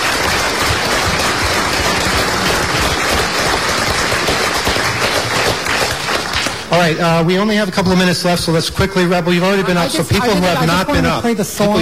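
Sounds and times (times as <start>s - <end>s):
crowd applauding: 0.0s - 7.0s
speech: 6.8s - 11.8s.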